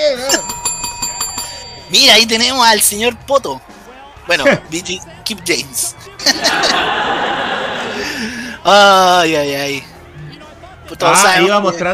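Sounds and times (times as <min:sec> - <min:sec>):
small bell rung in quick strikes: 0:00.0 - 0:03.1
speech: 0:01.9 - 0:03.7, 0:04.3 - 0:07.2, 0:08.6 - 0:09.9, 0:10.9 - 0:11.9
laughter: 0:04.4 - 0:04.9, 0:05.8 - 0:08.6.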